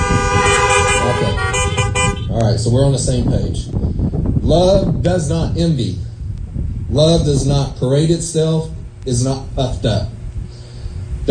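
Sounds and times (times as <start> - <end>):
car horn honking: 0.0 - 2.4
low rumble of traffic or engine noise: 0.0 - 11.2
speech: 2.5 - 6.1, 6.9 - 10.2.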